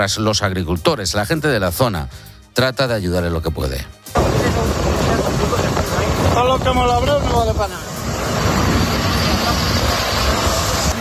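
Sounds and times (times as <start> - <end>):
speech: 0.0 - 4.9, 6.4 - 7.9
helicopter engine and rotor roar over a wildfire: 4.2 - 10.9.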